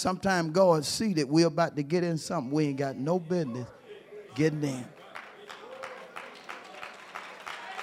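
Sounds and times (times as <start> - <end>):
speech: 0.0 - 3.8, 4.4 - 5.0
crowd noise: 0.0 - 7.8
audience clapping in rhythm: 4.9 - 7.8.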